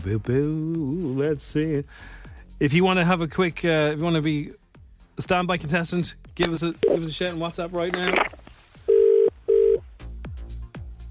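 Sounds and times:
speech: 0.0 - 4.6, 5.2 - 8.4
phone line noise: 8.0 - 9.8
telephone buzzing ring tones on an outgoing call: 8.9 - 9.8.

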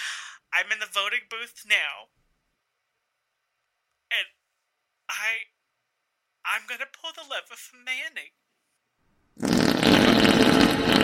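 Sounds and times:
speech: 0.6 - 2.2, 4.1 - 4.4, 5.1 - 5.5, 6.4 - 8.4
loud sustained fart: 9.4 - 11.0.

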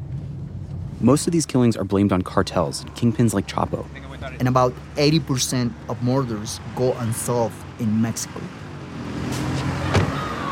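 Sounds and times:
low rumble of traffic or an idling vehicle on a busy street in Mexico: 0.0 - 10.5
speech: 1.0 - 8.6
car doors opening and shutting: 9.1 - 10.5.

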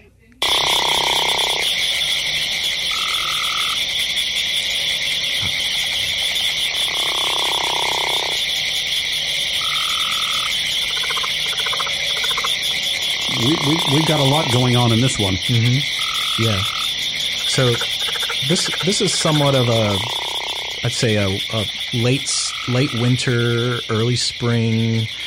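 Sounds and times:
constant high insect-like frog trill: 0.4 - 25.2
speech: 13.9 - 16.8, 17.6 - 20.2, 20.8 - 25.2.

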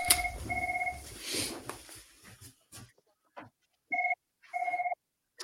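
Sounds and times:
telephone ringing in double-trill bursts: 0.0 - 1.0, 3.9 - 5.0.

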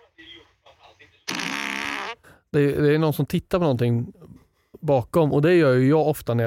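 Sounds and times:
loud buzzy fart played back from a recording: 1.3 - 2.2
speech: 2.5 - 4.2, 4.8 - 6.4.

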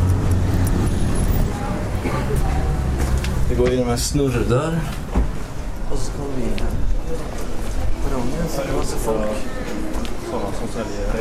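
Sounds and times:
idling and passing engines at a busy bus station at night: 0.0 - 6.3
faint murmuring voices: 1.3 - 3.7, 4.8 - 11.1
speech: 3.6 - 5.0, 8.2 - 11.1.

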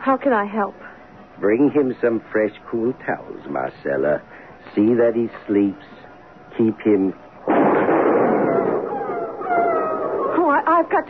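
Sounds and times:
speech: 0.1 - 0.8, 1.4 - 6.0, 6.6 - 7.2, 10.9 - 11.0
loud booming gunshot fired at a wolf: 7.4 - 9.4
wolf's long wavering howl: 8.1 - 10.8.

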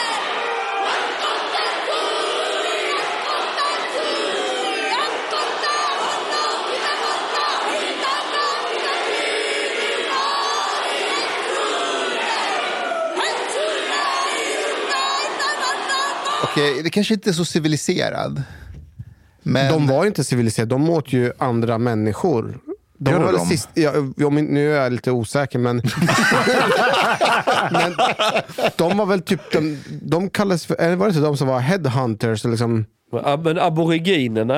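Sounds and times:
large group chanting a Māori war haka in the parliament of New Zealand: 0.0 - 16.8, 23.0 - 23.8
speech: 16.6 - 18.6, 19.4 - 34.5
laughter: 25.8 - 30.0.

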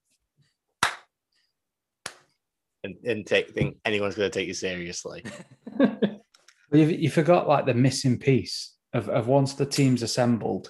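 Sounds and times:
slow hand clapping: 0.8 - 1.1
speech: 2.8 - 6.0, 6.8 - 10.6
laughter: 5.2 - 6.2.

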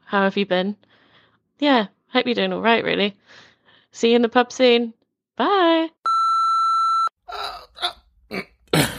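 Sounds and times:
speech: 0.1 - 0.9, 1.6 - 6.0, 8.3 - 8.9
long electronic beep: 6.1 - 7.1
stifled burp with choked gulping spasms: 7.4 - 8.9.

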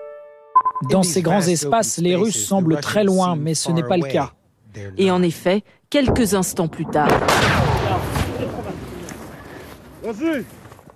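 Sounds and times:
speech: 0.8 - 7.7, 10.0 - 10.6
heavy artillery shell explosion in wide open country: 6.1 - 10.0.

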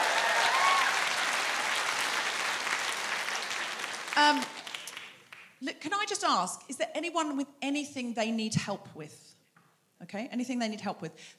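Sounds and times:
room full of people applauding: 0.0 - 5.4
speech: 4.2 - 4.6, 5.6 - 9.3, 10.0 - 11.3.

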